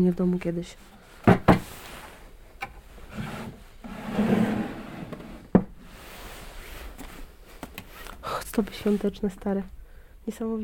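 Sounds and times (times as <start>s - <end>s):
speech: 0.0s - 1.0s, 4.2s - 4.6s, 8.6s - 10.6s
oak wooden table drawer sliding open wood on wood: 3.0s - 8.0s.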